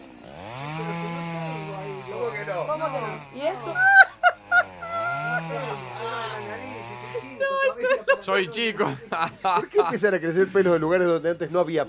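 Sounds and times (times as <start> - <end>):
voice imitating a string trimmer: 0.0 - 7.8
speech: 2.7 - 4.0, 8.2 - 11.8
laughter: 3.0 - 11.1.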